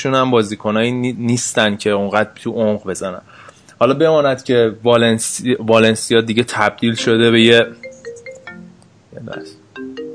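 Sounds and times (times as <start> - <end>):
speech: 0.0 - 7.9, 9.2 - 9.6
incoming phone call ringtone on laptop synced with phone: 7.0 - 10.1.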